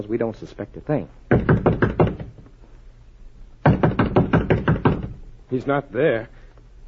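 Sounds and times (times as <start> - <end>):
speech: 0.0 - 1.5, 5.5 - 6.4
knuckles knocking on a hotel room door: 1.3 - 2.4, 3.6 - 5.2.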